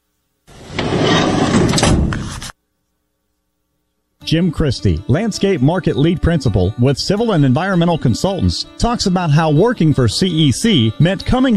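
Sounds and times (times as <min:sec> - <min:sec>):
heavy wooden barn door sliding shut along its track: 0:00.5 - 0:02.5
speech: 0:04.3 - 0:11.5.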